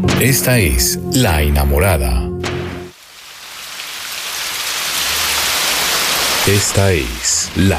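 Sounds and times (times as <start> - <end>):
speech: 0.2 - 2.3, 6.5 - 7.7
steady rain falling: 2.4 - 7.7.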